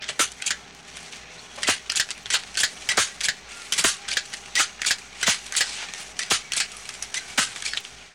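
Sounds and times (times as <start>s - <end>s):
hedge clippers: 1.6s - 7.9s.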